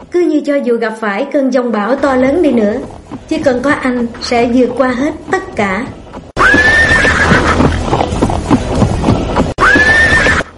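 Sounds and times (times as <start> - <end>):
speech: 0.1 - 6.0
hoof clatter at a racetrack: 2.0 - 10.5
horse neighing loudly at a racetrack: 6.4 - 7.9, 9.6 - 10.5.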